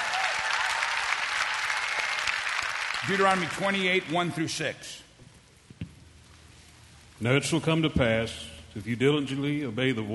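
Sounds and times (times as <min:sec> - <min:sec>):
audience clapping in sustained dense applause: 0:00.0 - 0:04.0
speech: 0:03.0 - 0:05.0, 0:07.2 - 0:10.1.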